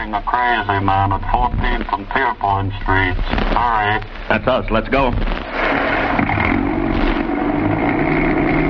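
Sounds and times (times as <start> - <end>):
speech: 0.1 - 6.3
old police car engine accelerating with a rough throaty rumble: 5.6 - 8.6.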